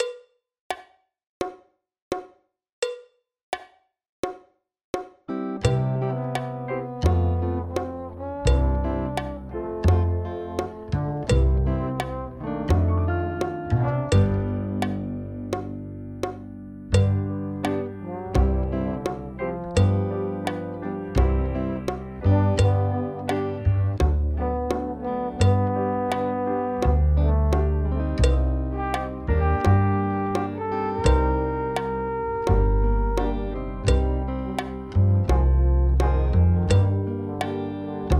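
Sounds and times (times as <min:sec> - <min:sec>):
drum kit backing track: 0:05.0 - 0:38.1.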